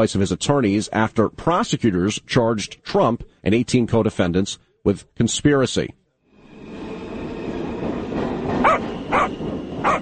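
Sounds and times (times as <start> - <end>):
speech: 0.0 - 6.0
constant low rumble of train noise: 6.4 - 10.0
dog barking: 8.6 - 10.0.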